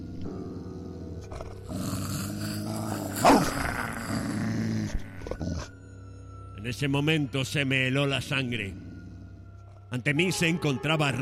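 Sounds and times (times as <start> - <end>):
large Alaskan Malamute dog growling and snarling: 0.0 - 5.7
speech: 6.6 - 8.8, 9.9 - 11.2.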